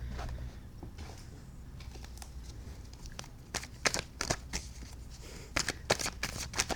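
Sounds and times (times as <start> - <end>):
deck of tarot cards being shuffled: 1.8 - 6.7.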